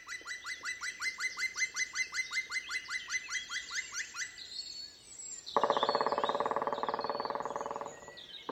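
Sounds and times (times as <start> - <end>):
black woodpecker ringing territorial calls in a forest: 0.0 - 4.3, 5.6 - 8.5
black woodpecker drumming: 5.6 - 8.5.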